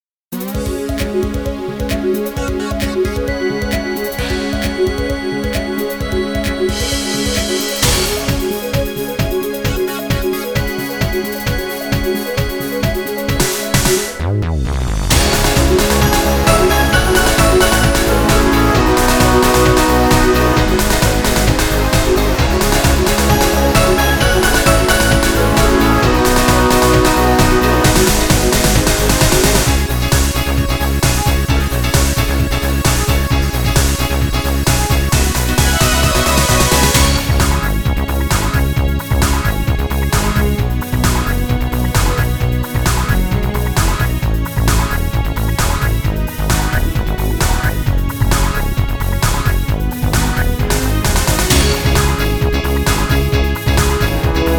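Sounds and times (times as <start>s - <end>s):
instrumental music: 0.3s - 54.5s.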